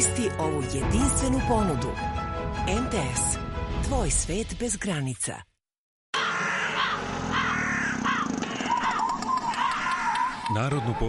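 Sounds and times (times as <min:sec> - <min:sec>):
speech: 0:00.0 - 0:05.5, 0:10.5 - 0:11.0
several crows cawing: 0:06.2 - 0:11.0.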